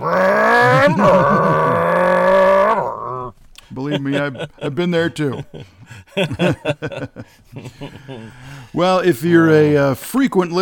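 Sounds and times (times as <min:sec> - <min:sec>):
voice imitating a car engine revving: 0:00.0 - 0:03.3
laughter: 0:00.4 - 0:08.8
speech: 0:04.0 - 0:10.6.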